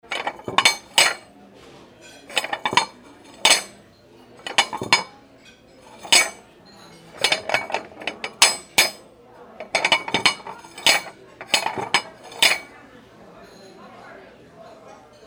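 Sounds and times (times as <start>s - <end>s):
plates stacking in a restaurant: 0.0s - 1.3s, 2.1s - 3.8s, 4.4s - 5.1s, 5.8s - 6.4s, 7.0s - 12.7s.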